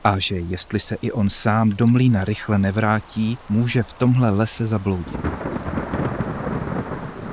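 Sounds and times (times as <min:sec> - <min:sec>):
speech: 0:00.0 - 0:05.7
steady rain: 0:00.0 - 0:07.3
deep continuous rolling thunder: 0:05.0 - 0:07.3.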